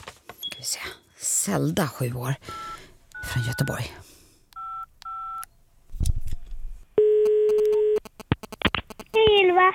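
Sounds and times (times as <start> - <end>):
speech: 0.6 - 4.1
dual-tone telephone keypad beeps: 2.5 - 3.8, 4.6 - 5.5, 7.0 - 9.0.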